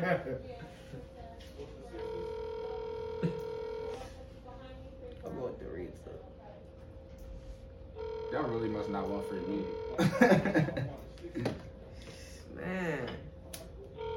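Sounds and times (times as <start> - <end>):
speech: 0.0 - 1.7, 8.3 - 11.6
faint voices murmuring: 0.0 - 14.1
outgoing phone call electronic ring tone: 2.0 - 4.1, 8.0 - 10.3, 14.0 - 14.1
laughter: 10.0 - 11.6.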